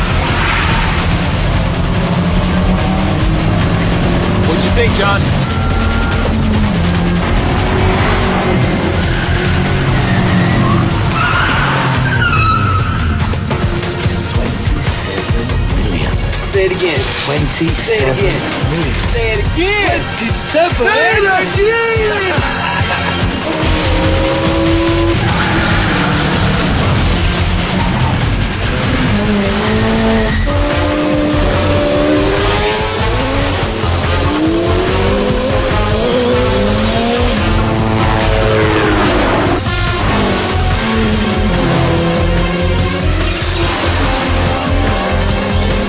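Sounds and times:
Mini car tires squealing and skidding in a storm drain: 0:00.0 - 0:15.1, 0:20.0 - 0:45.8
Mini car engines revving in a storm drain: 0:00.0 - 0:45.8
speech: 0:17.6 - 0:18.6, 0:19.2 - 0:22.6
laughter: 0:22.1 - 0:23.9.

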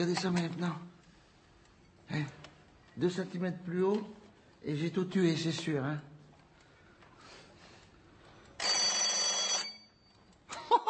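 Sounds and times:
speech: 0:00.0 - 0:00.9, 0:02.1 - 0:02.4, 0:03.0 - 0:06.1
alarm clock ringing: 0:08.6 - 0:10.1.

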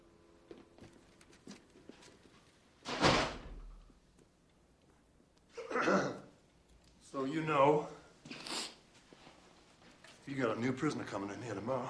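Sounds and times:
door closing thuds: 0:02.8 - 0:03.7
speech: 0:07.3 - 0:08.0, 0:10.3 - 0:11.8.

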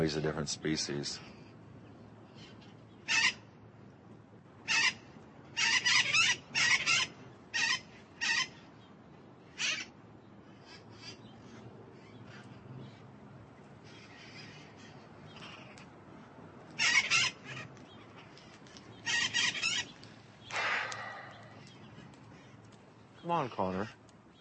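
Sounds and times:
speech: 0:00.0 - 0:01.4, 0:23.6 - 0:24.0
blue-crowned conures squawking: 0:03.0 - 0:03.4, 0:04.6 - 0:05.0, 0:05.6 - 0:08.6, 0:09.5 - 0:09.9, 0:13.8 - 0:22.7.

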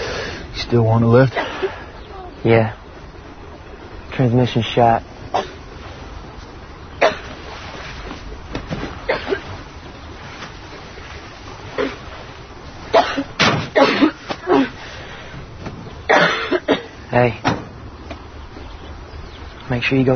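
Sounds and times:
steady rumble: 0:00.0 - 0:20.1
speech: 0:00.7 - 0:01.4, 0:02.4 - 0:02.8, 0:04.2 - 0:05.1, 0:17.2 - 0:17.4, 0:19.8 - 0:20.1
person coughing harshly: 0:05.3 - 0:05.6, 0:09.0 - 0:09.5, 0:12.9 - 0:14.7, 0:16.1 - 0:17.0.

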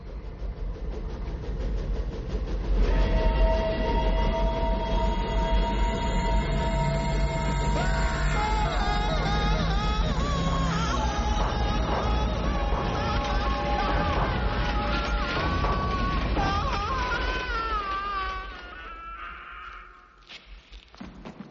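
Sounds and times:
old New York Central train locomotive passing in a tunnel: 0:00.0 - 0:20.2
metallic train wheel squeals: 0:02.8 - 0:18.6.

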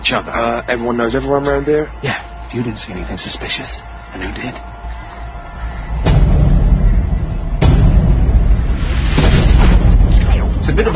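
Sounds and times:
speech: 0:00.1 - 0:04.8, 0:10.8 - 0:10.9
sharp blasts: 0:06.0 - 0:10.8
loud explosion with heavy sustained low rumble: 0:07.5 - 0:10.8.

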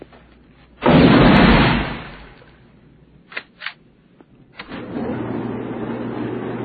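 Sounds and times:
armor-piercing bullets fired at a protective vest: 0:00.8 - 0:02.5.

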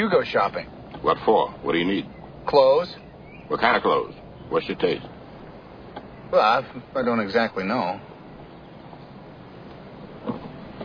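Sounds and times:
speech: 0:00.0 - 0:05.1, 0:06.3 - 0:08.1
car engine and road rumble slowing to a halt: 0:00.0 - 0:10.8
soft mechanical bump: 0:08.7 - 0:10.8.

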